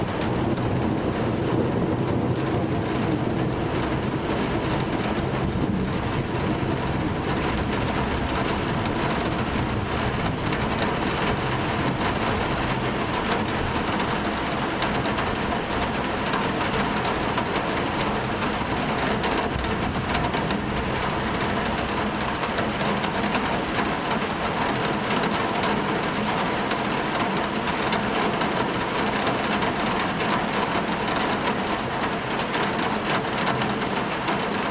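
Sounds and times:
rain tapping on a window: 0:00.0 - 0:34.6
rumble of thunder: 0:00.1 - 0:24.0.

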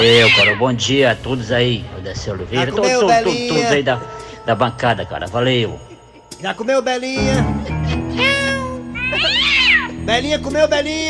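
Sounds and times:
cat meowing: 0:00.0 - 0:00.6, 0:09.0 - 0:10.0
speech: 0:00.0 - 0:07.7, 0:10.1 - 0:11.0.

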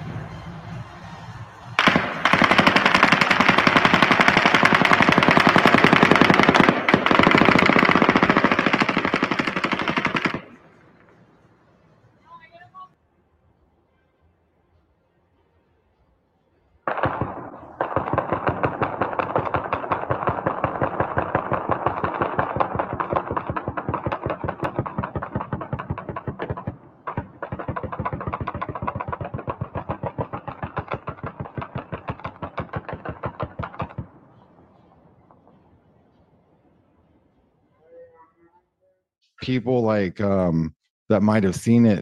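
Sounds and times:
rapid automatic gunfire: 0:01.8 - 0:11.1, 0:16.9 - 0:34.2
speech: 0:39.5 - 0:42.0.

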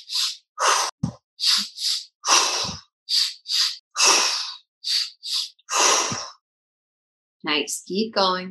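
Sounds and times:
fast forceful breathing during a guided breathing exercise: 0:00.0 - 0:06.4
speech: 0:07.5 - 0:08.5.

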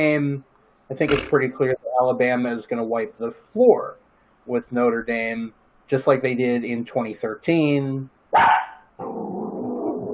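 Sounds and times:
speech: 0:00.0 - 0:09.3
dog barking: 0:08.4 - 0:08.9.

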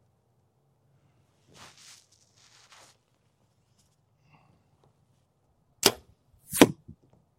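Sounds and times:
soft rustling: 0:01.0 - 0:05.3
arrows striking a foam archery target: 0:05.8 - 0:07.0.

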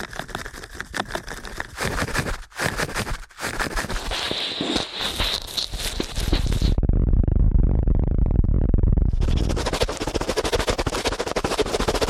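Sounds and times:
crackly ear cleaning clicks and scratches with a sharp high hiss: 0:00.0 - 0:06.8, 0:09.2 - 0:12.0
deep rumbling rub: 0:03.0 - 0:12.0.

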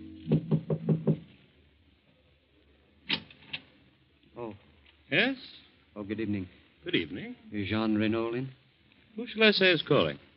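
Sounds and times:
knocking on a door in Paris at night: 0:00.3 - 0:01.2
speech: 0:05.1 - 0:08.6, 0:09.2 - 0:10.3.

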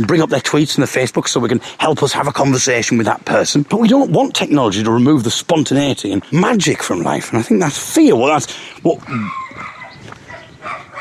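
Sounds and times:
speech: 0:00.0 - 0:09.4
dog giving short yelping barks: 0:09.0 - 0:10.9.

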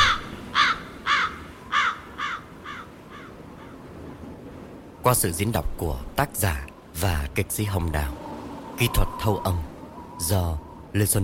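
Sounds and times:
crows cawing around a lake: 0:00.0 - 0:03.8
speech: 0:05.0 - 0:08.2, 0:08.8 - 0:11.2.

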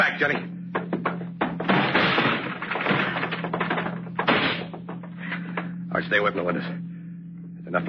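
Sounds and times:
speech: 0:00.0 - 0:00.6, 0:06.0 - 0:06.9
locked door being kicked in: 0:00.3 - 0:05.2
rattling crash of door giving way: 0:00.9 - 0:05.1.

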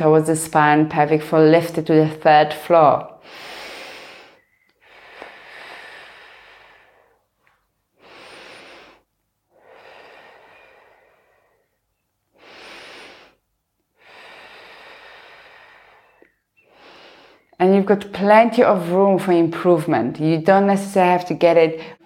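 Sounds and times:
speech: 0:00.0 - 0:03.5, 0:17.6 - 0:22.0
slow deep breathing in a guided exercise: 0:03.2 - 0:07.3, 0:08.0 - 0:17.6.

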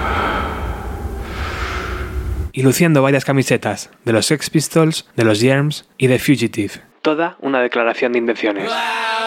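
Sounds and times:
slow heavy breathing: 0:00.0 - 0:02.5
low rumble: 0:00.0 - 0:02.6
speech: 0:02.6 - 0:09.1.

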